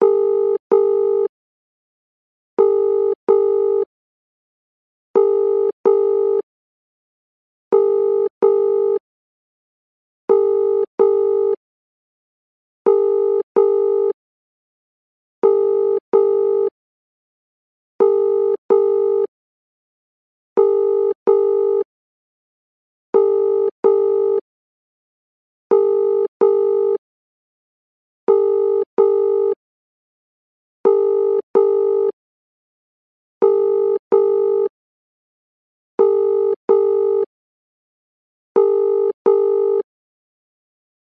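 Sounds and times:
UK household telephone ringing tone: 0:00.0 - 0:01.3, 0:02.6 - 0:03.9, 0:05.2 - 0:06.4, 0:07.7 - 0:09.0, 0:10.3 - 0:11.6, 0:12.9 - 0:14.2, 0:15.4 - 0:16.7, 0:18.0 - 0:19.3, 0:20.6 - 0:21.9, 0:23.2 - 0:24.4, 0:25.7 - 0:27.0, 0:28.3 - 0:29.6, 0:30.9 - 0:32.2, 0:33.4 - 0:34.7, 0:36.0 - 0:37.3, 0:38.6 - 0:39.9.

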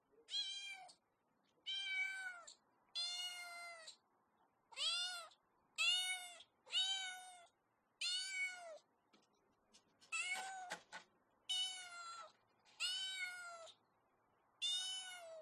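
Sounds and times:
barn kitten crying and meowing: 0:00.3 - 0:01.0, 0:01.6 - 0:04.0, 0:04.7 - 0:08.8, 0:11.5 - 0:13.8, 0:14.6 - 0:15.4.

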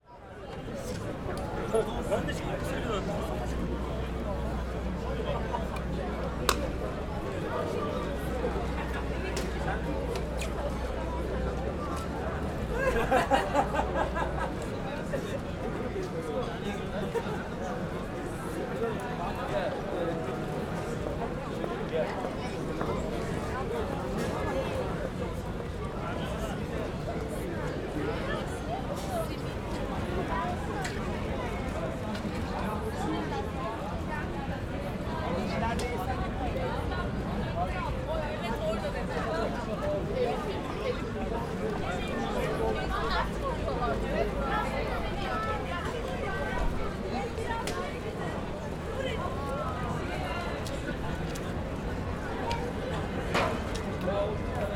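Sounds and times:
Turkish voices of crowd in Taksim Istanbul: 0:00.0 - 0:54.7
people passing by in Taksim Istanbul: 0:00.1 - 0:54.7
laughter: 0:12.6 - 0:14.8.

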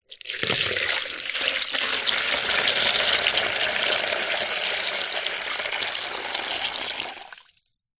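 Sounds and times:
water pouring into empty plastic container: 0:00.0 - 0:07.9.

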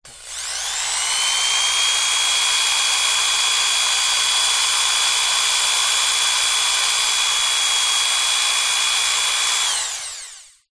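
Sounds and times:
hand drill: 0:00.0 - 0:10.7.

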